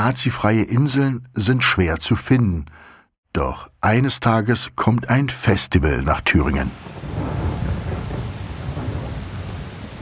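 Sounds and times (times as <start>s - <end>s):
speech: 0.0s - 7.4s
heavy rain pouring: 6.3s - 9.9s.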